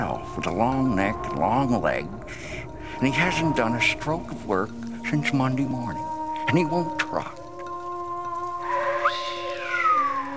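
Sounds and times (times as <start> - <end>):
speech: 0.0 - 7.4
person whistling a wavering tune: 8.6 - 10.3.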